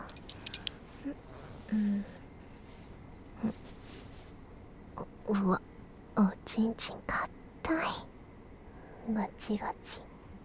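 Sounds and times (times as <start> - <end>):
belt buckle clinking: 0.0 - 0.9
speech: 1.0 - 2.2, 5.3 - 5.6, 6.6 - 8.1, 9.1 - 10.1
fabric rustling: 2.1 - 4.4.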